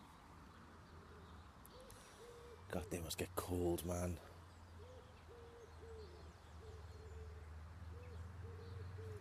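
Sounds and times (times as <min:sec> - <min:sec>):
wood pigeon or dove cooing: 0:00.9 - 0:03.1, 0:04.8 - 0:09.2
speech: 0:02.7 - 0:04.3.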